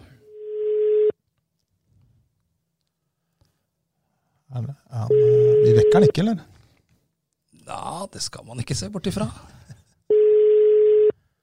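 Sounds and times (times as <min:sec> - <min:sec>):
electronic ringback tone from an outgoing phone call: 0:00.3 - 0:01.1, 0:05.1 - 0:06.1, 0:10.1 - 0:11.1
speech: 0:04.6 - 0:06.5, 0:08.0 - 0:09.6.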